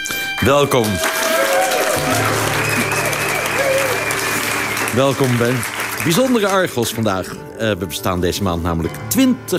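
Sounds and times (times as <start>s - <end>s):
sizeable studio audience applauding in Amsterdam: 0.1s - 7.3s
speech: 0.4s - 1.2s, 4.9s - 9.5s
low hum: 1.8s - 5.9s.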